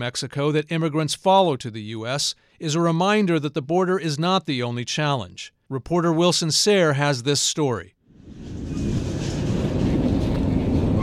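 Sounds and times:
speech: 0:00.0 - 0:08.6
freight train rolling on rail tracks in Mexico: 0:08.2 - 0:11.0.

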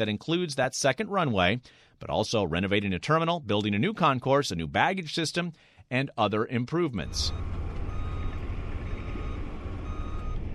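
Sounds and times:
speech: 0:00.0 - 0:07.6
end loader diesel engine rumble pushing dirt and gravel: 0:07.0 - 0:10.5
end loader reversing alarm beeps at airport runway construction site: 0:07.1 - 0:10.5.

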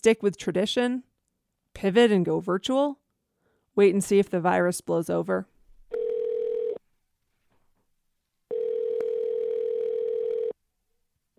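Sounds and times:
speech: 0:00.0 - 0:01.1, 0:01.8 - 0:03.0, 0:03.8 - 0:05.5
telephone dial tone: 0:05.9 - 0:06.8, 0:08.5 - 0:10.6.

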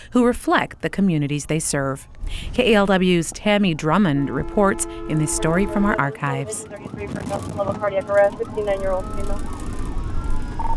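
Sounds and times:
steady low ambulance engine rumble: 0:00.0 - 0:10.7
speech: 0:00.1 - 0:09.6
ambulance siren wailing: 0:02.8 - 0:10.7.

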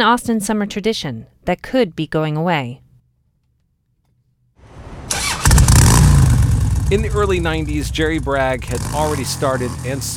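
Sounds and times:
speech: 0:00.0 - 0:02.8, 0:06.9 - 0:10.1
motorcycle engines starting up and revving at a rally parade: 0:04.8 - 0:10.1.

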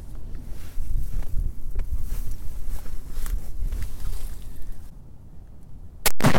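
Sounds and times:
outdoor wind: 0:00.0 - 0:06.3
single loud sharp rifle gunshot outdoors: 0:06.0 - 0:06.3.

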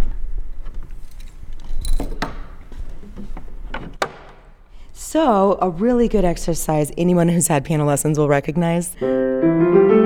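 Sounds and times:
small key clicking and rattling in the lock of a grand piano key cover: 0:01.0 - 0:03.0
wooden grand piano key cover sliding back with knocks and a clunk: 0:02.0 - 0:04.7
speech: 0:05.1 - 0:10.0.

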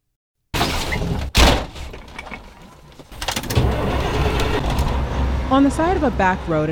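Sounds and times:
semi-truck door slamming: 0:00.6 - 0:05.1
heavy 18-wheeler semi-truck engine rumbling and revving on a back road: 0:00.6 - 0:06.7
speech: 0:05.5 - 0:06.7.

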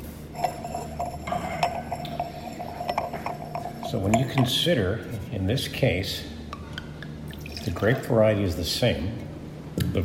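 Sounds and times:
wine glass being set down clinking at a wine tasting: 0:00.4 - 0:04.6
speech: 0:03.9 - 0:06.3, 0:07.6 - 0:09.3.

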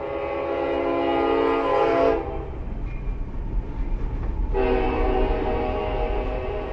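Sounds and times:
freight train horn blaring: 0:00.0 - 0:02.6, 0:04.5 - 0:06.7
freight train rumbling past on the main line in Hays, Kansas: 0:00.0 - 0:06.7
heavy clatter of freight cars: 0:02.0 - 0:06.7.

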